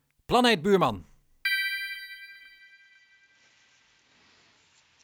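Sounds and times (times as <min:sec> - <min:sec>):
speech: 0:00.3 - 0:01.1
buzzing ringback tone of an outgoing phone call: 0:01.5 - 0:03.0
bright chime: 0:01.5 - 0:03.3.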